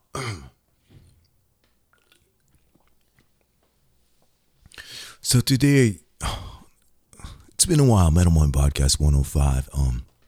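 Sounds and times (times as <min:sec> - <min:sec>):
small swallow: 0:00.2 - 0:03.5
soft wet mouth clicks: 0:01.1 - 0:05.0
quick sip from a drink: 0:01.1 - 0:05.2
speech: 0:05.2 - 0:06.3, 0:07.7 - 0:10.1.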